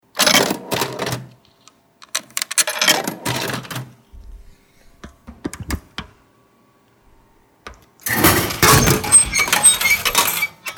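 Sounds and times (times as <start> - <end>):
vending machine: 0.2 - 4.0, 8.0 - 10.7.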